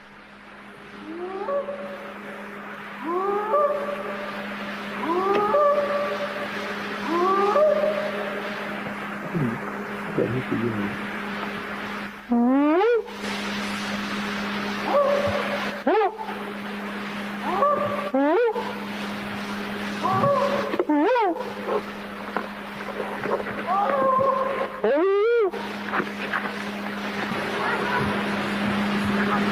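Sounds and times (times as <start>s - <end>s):
faint outdoor hiss: 0.0s - 29.5s
steady low hum: 0.0s - 29.5s
alleged Bigfoot whooping calls: 1.0s - 2.4s, 3.0s - 9.6s, 14.8s - 16.5s, 17.3s - 19.0s, 20.0s - 22.0s, 23.6s - 25.9s.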